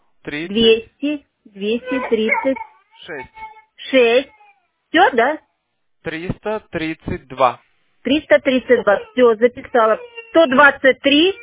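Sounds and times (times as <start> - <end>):
speech: 0.2 - 5.4, 6.0 - 11.4
young child crying: 1.8 - 4.6, 8.5 - 11.4.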